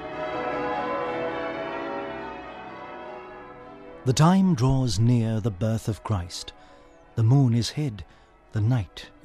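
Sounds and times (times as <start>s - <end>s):
Christmas church bells pealing: 0.0s - 6.4s
speech: 4.0s - 9.2s.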